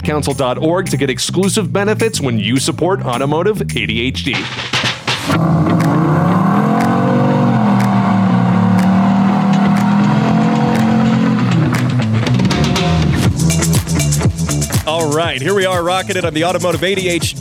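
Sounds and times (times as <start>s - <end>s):
speech: 0.1s - 6.2s, 15.0s - 17.3s
engine crackles during a burnout: 5.1s - 13.3s
car engine revving during a burnout: 5.1s - 14.6s.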